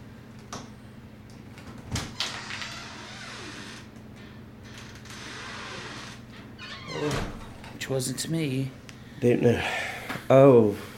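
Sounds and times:
low mechanical hum: 0.0 - 10.9
door creaking and rattling as it swings open: 1.6 - 7.8
speech: 7.0 - 10.9.

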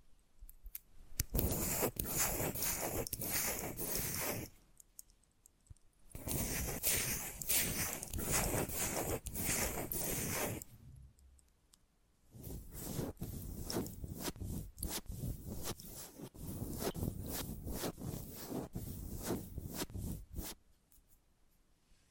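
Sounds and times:
dry scratching and tracing strokes: 1.3 - 4.5, 6.2 - 10.7, 12.3 - 20.6.

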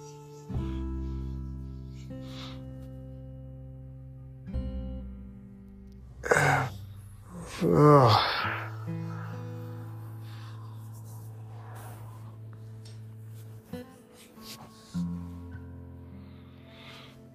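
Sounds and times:
deep breathing in through the nostrils during a guided breathing exercise: 0.0 - 3.4, 8.1 - 17.3
soft, sustained tonal music: 0.0 - 17.3.

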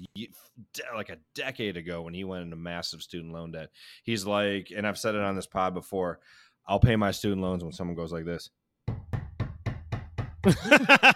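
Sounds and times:
speech: 0.2 - 8.6, 10.4 - 11.1
firm knocks on a front door: 8.9 - 10.5
laughter: 10.4 - 11.1.

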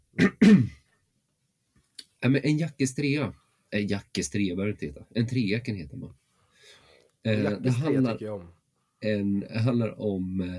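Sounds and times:
speech: 0.2 - 0.7, 2.2 - 6.2, 7.2 - 10.5
person clearing throat: 0.2 - 0.8.

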